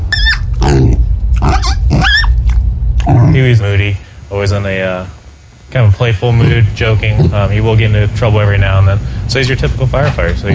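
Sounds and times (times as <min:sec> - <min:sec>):
12-pound pig grunting and squealing: 0:00.0 - 0:03.5, 0:06.3 - 0:07.6
steady low rumble: 0:00.0 - 0:10.5
speech: 0:03.4 - 0:10.5.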